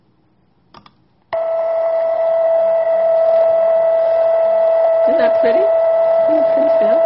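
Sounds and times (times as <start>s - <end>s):
millisecond pulsar radio pulses sped into a buzzy musical tone: 1.4s - 7.0s.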